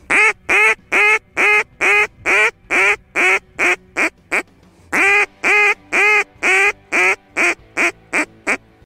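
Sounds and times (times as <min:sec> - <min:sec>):
duck short-distance call: 0:00.1 - 0:08.6.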